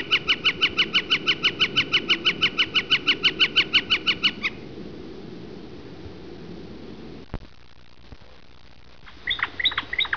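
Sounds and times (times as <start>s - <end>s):
Northern Flicker calling: 0.0s - 4.6s, 9.0s - 10.1s.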